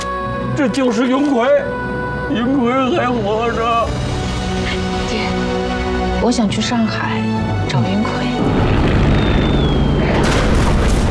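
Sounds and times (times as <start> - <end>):
speech: 0.6 - 8.2
explosions of boats being bombed on the water: 8.4 - 11.0
thin whistling tone: 9.1 - 10.2.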